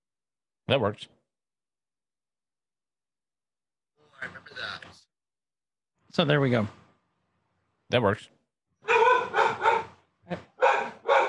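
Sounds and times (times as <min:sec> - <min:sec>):
speech: 0:00.7 - 0:01.2, 0:06.2 - 0:06.8, 0:07.9 - 0:08.4, 0:10.3 - 0:10.5
dog barking: 0:08.8 - 0:11.2.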